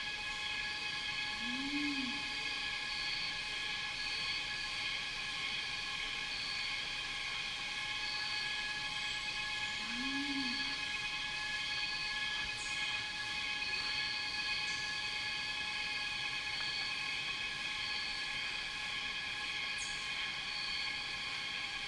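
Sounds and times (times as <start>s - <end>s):
cicadas droning in a rainforest: 0.0s - 21.8s
bird hooting in a rainforest: 1.4s - 2.4s, 9.8s - 10.8s.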